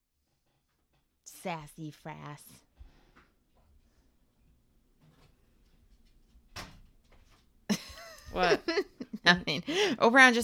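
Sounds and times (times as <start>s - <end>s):
speech: 1.4s - 2.7s, 8.3s - 10.4s
door shutting with a solid thud: 6.5s - 7.0s.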